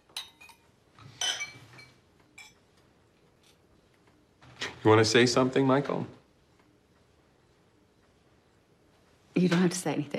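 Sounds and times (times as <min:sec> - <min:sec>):
glasses clinking in a celebratory toast: 0:00.0 - 0:02.6
speech: 0:04.8 - 0:06.2, 0:09.4 - 0:10.1.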